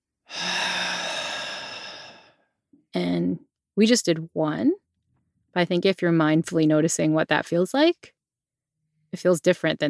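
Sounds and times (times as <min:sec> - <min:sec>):
deep belly breath in and slow exhale: 0:00.3 - 0:02.4
speech: 0:03.0 - 0:04.8, 0:05.5 - 0:08.2, 0:09.1 - 0:09.8.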